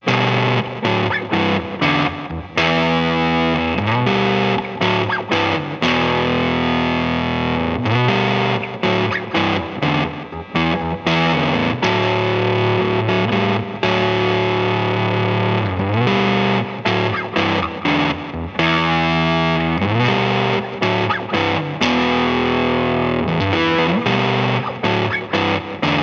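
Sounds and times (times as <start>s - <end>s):
electric guitar fuzz through a neck pickup: 0.0s - 26.0s.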